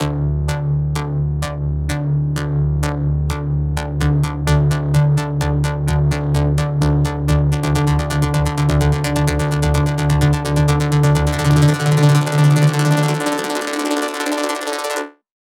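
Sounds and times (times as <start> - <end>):
128BPM bass line in D: 0.0 - 15.1
melody fills: 7.5 - 15.1.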